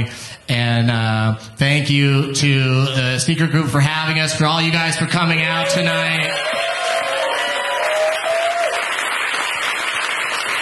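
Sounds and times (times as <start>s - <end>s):
speech: 0.0s - 6.7s
live audience applause: 5.6s - 10.6s.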